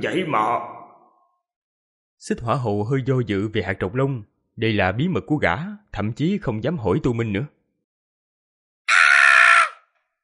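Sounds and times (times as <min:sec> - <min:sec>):
speech: 0:00.0 - 0:00.8, 0:02.2 - 0:07.6
creature screaming loudly, audiobook sound effect: 0:08.9 - 0:09.9.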